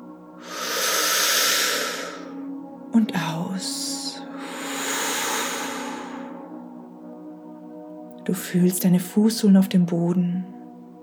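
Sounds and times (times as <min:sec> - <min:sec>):
deep inhale through the nose: 0:00.4 - 0:02.4, 0:04.3 - 0:06.6
speech: 0:03.0 - 0:04.5, 0:08.3 - 0:10.6.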